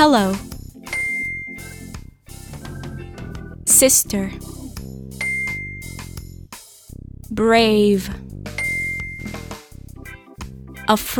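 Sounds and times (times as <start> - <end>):
speech: 0.0 - 0.5, 3.8 - 4.5, 7.4 - 8.3, 10.9 - 11.1
busy musical background: 0.0 - 11.1
bright bell ding: 0.9 - 1.9, 5.2 - 6.0, 8.6 - 9.5
softer chime: 0.9 - 1.9, 5.2 - 6.0, 8.6 - 9.5.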